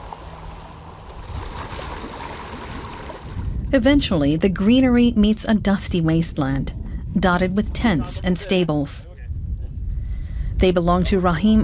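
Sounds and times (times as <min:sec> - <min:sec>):
water splashing and lapping against a boat hull in reed-filled marshlands: 0:00.0 - 0:03.9
low engine-like hum of a boat: 0:00.0 - 0:08.0
speech: 0:03.7 - 0:09.1, 0:10.6 - 0:11.6.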